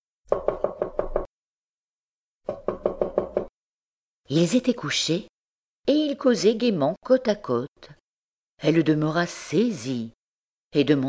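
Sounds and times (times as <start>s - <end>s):
soft knocking on a bedroom door by a servant: 2.5s - 3.5s
speech: 4.3s - 8.0s, 8.6s - 11.0s.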